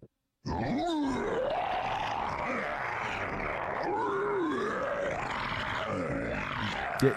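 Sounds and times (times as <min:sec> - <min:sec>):
person imitating a monster roar with a gravelly throat growl: 0:00.4 - 0:07.1.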